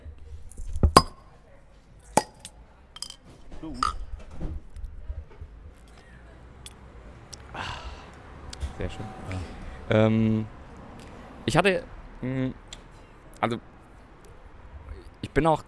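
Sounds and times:
glasses clinking in a toast: 1.0 - 1.2, 2.2 - 3.2, 3.8 - 4.0
speech: 3.6 - 4.0, 8.8 - 10.6, 11.5 - 12.6, 13.4 - 13.7, 15.3 - 15.6.

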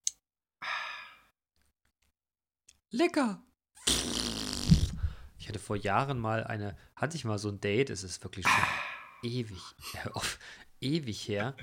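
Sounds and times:
speech: 2.9 - 3.5, 5.7 - 11.6
faint mouth clicks: 3.8 - 5.2
person imitating a satisfied ahh after drinking: 8.5 - 9.2.

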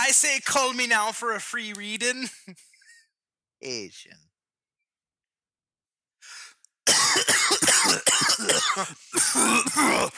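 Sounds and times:
speech: 0.1 - 2.7, 3.6 - 4.3, 6.9 - 10.1
quick intake of breath: 6.2 - 6.6
person having a coughing fit: 6.9 - 10.1.

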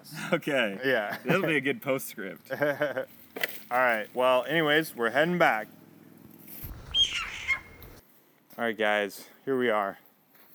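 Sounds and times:
speech: 0.3 - 5.8, 8.6 - 10.0
low rumble of noise: 6.6 - 8.0
scrub jay squawking: 6.6 - 8.0.

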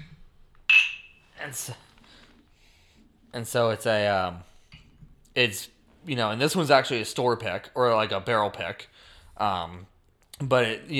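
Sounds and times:
glasses of bourbon clinking in a toast: 0.0 - 1.4
speech: 1.4 - 1.9, 3.3 - 4.5, 5.4 - 10.9.

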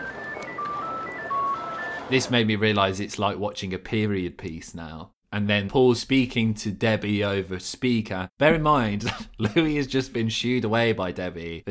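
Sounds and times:
classic ringtone on a mobile phone: 0.0 - 2.2
speech: 2.1 - 11.7
laughter: 9.0 - 9.8.

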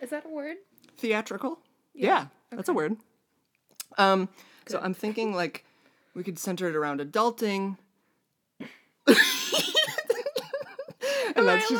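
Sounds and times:
speech: 0.0 - 3.1, 3.9 - 7.8, 8.6 - 9.8, 11.4 - 11.7
person coughing harshly: 9.1 - 11.0
laughter: 9.1 - 11.7.

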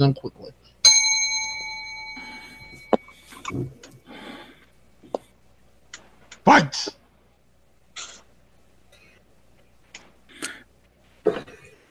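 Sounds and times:
speech: 0.0 - 0.6, 3.5 - 3.8, 6.5 - 7.0
single bright bell strike: 0.8 - 3.4.

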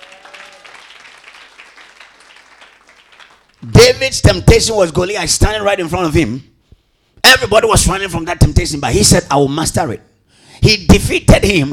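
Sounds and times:
crowd clapping during a sermon: 0.0 - 3.8
speech: 3.6 - 6.5, 7.3 - 11.7.

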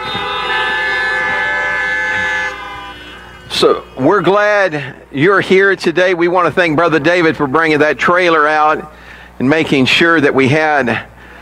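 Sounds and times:
vehicle horn honking: 0.0 - 5.6
speech: 3.6 - 11.1.

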